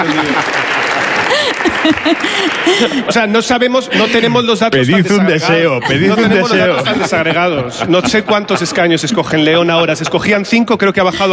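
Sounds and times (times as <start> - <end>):
speech: 0.0 - 0.9, 2.0 - 11.3
audience applause: 0.0 - 3.4
laughter: 0.0 - 9.8.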